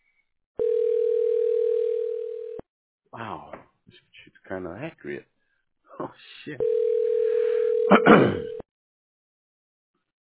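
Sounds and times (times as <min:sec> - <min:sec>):
mid-pitched telephone line tone as a call connects: 0:00.6 - 0:02.6, 0:06.6 - 0:08.6
speech: 0:03.2 - 0:05.3, 0:06.0 - 0:06.8, 0:07.9 - 0:08.6.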